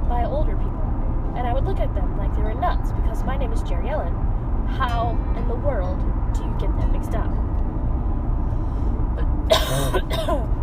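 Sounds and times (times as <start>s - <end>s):
steady low hum: 0.0s - 10.6s
speech: 1.6s - 7.5s, 9.7s - 10.6s
rough raspy coughs: 9.5s - 10.5s.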